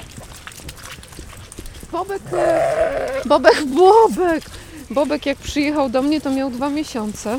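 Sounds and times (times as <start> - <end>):
speech: 1.9 - 7.3
several sheep bleating: 2.2 - 3.6.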